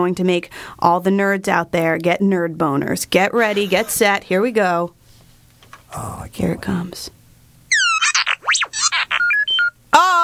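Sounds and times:
speech: 0.0s - 5.0s, 5.9s - 7.2s
electronic robot-like beeps, chirps and warbling sweeps: 7.7s - 9.8s.

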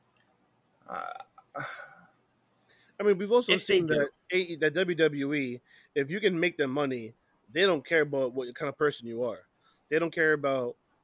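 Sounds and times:
speech: 0.9s - 1.8s, 3.0s - 10.8s
loud burps: 0.9s - 2.0s.

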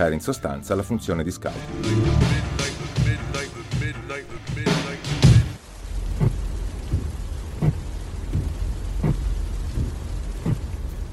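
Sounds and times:
speech: 0.0s - 2.7s
steady rain hissing: 1.5s - 11.1s.

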